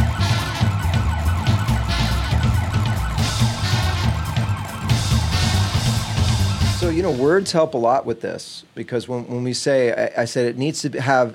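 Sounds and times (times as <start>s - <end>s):
band playing in a speakeasy: 0.0s - 7.5s
police sirens wailing: 0.0s - 7.5s
speech: 7.0s - 11.3s.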